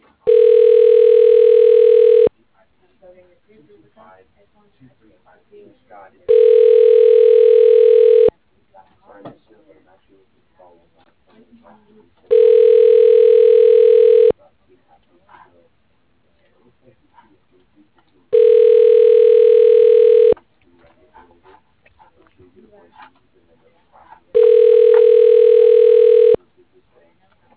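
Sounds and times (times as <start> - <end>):
telephone ringback tones as a call goes through to an office extension: 0.3 - 2.3, 6.3 - 8.3, 12.3 - 14.3, 18.4 - 20.4, 24.4 - 26.4.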